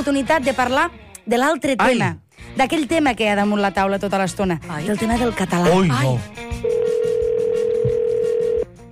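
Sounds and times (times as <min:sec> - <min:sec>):
speech: 0:00.0 - 0:06.8
ringback tone of an outgoing phone call: 0:06.6 - 0:08.7.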